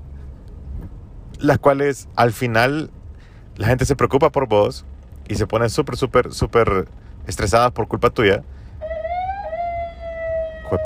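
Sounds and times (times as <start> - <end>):
low rumble of traffic: 0.0 - 10.8
speech: 1.4 - 3.0, 3.6 - 8.6
police car siren wailing: 8.8 - 10.8.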